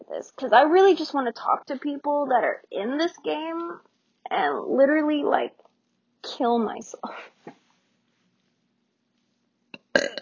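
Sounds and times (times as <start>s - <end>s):
speech: 0.1s - 5.6s, 6.2s - 7.6s
loud guttural burp: 9.8s - 10.2s.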